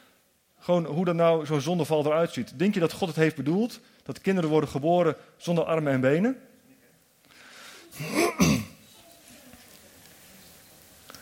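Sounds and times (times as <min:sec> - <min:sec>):
speech: 0:00.7 - 0:06.5, 0:08.0 - 0:08.5
harsh coughs: 0:08.0 - 0:08.8.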